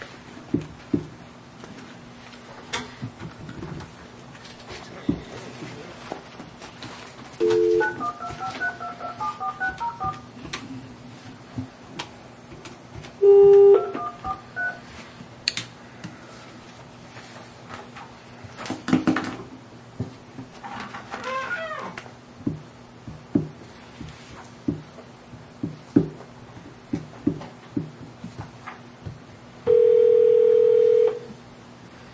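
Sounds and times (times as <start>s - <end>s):
low hum: 0.0s - 32.1s
short steady telephone dial tone: 7.4s - 10.2s, 13.2s - 14.8s, 29.7s - 31.3s
telephone keypad tones beeping: 7.4s - 10.3s, 13.2s - 14.8s.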